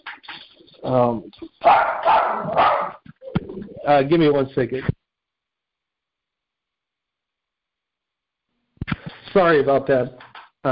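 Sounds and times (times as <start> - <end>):
speech: 0.8 - 2.7, 3.9 - 5.0, 9.3 - 10.7
dog barking indoors: 1.6 - 3.0.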